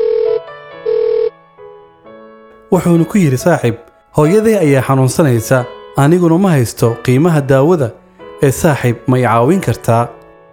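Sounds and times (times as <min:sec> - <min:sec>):
telephone ringing: 0:00.0 - 0:01.3
speech: 0:02.7 - 0:10.2.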